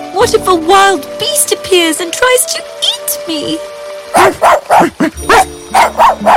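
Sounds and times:
speech: 0.2 - 6.3
small dog barking high-pitched yaps while being played with near a fountain: 4.2 - 6.3.

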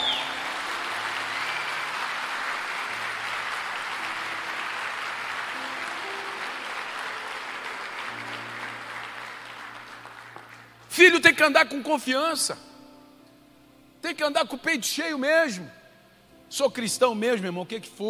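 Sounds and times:
audience applauding: 0.0 - 10.9
speech: 11.0 - 12.7, 14.2 - 15.8, 16.5 - 18.0.

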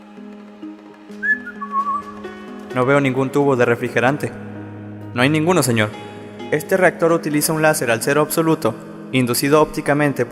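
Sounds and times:
man whistling appreciatively: 1.2 - 2.3
speech: 2.8 - 4.4, 5.2 - 10.2.

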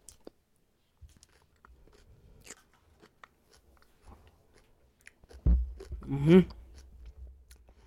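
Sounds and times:
biting and chewing crunchy fried chicken: 1.1 - 7.8
thump near the microphone: 5.4 - 5.8
speech: 6.1 - 6.6.

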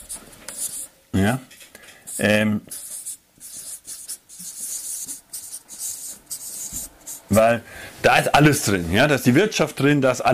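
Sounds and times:
writing on a board: 0.0 - 0.9, 2.1 - 7.4
speech: 1.2 - 1.6, 2.2 - 2.8, 7.4 - 10.3.

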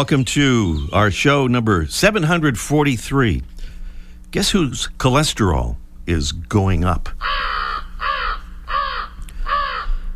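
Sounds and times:
speech: 0.0 - 3.5, 4.3 - 7.6
low hum: 0.0 - 10.1
American crow cawing in a city: 7.2 - 10.1.

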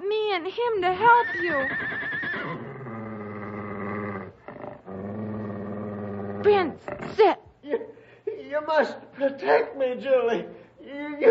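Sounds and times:
speech: 0.4 - 2.7, 6.4 - 7.8, 8.5 - 10.6
stallion neighing: 1.0 - 7.3
stallion snorting: 1.0 - 7.4.

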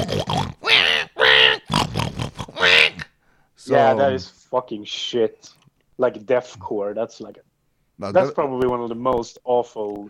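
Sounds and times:
voice imitating a goregrind pig squeal: 0.0 - 3.2
speech: 3.8 - 10.0.

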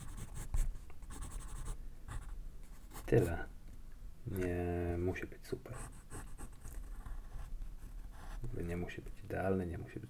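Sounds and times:
pencil writing on paper: 0.0 - 2.3, 5.7 - 8.5
speech: 3.1 - 3.5, 4.2 - 6.0, 8.4 - 10.0.

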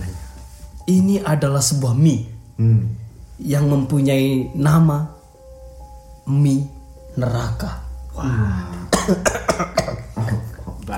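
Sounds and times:
speech: 0.9 - 5.2, 6.3 - 9.8
person coughing: 8.9 - 10.5.

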